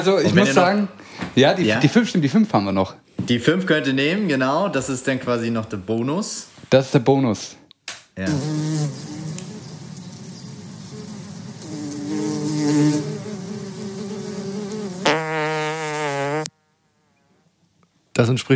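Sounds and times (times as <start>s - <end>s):
speech: 0.0s - 7.6s, 8.2s - 9.4s, 18.2s - 18.5s
fly buzzing: 8.2s - 17.3s.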